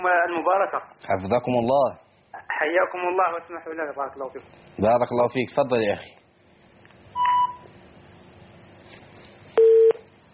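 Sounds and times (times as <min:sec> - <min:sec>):
speech: 0:00.0 - 0:02.0, 0:02.6 - 0:06.2
telephone tones after a disconnected call: 0:07.2 - 0:07.6, 0:09.6 - 0:10.0.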